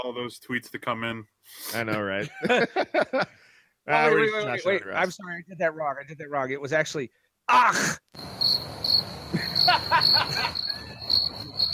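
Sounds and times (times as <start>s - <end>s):
speech: 0.0s - 10.7s
laughter: 2.0s - 3.3s, 9.3s - 11.2s
crickets chirping: 8.2s - 11.7s.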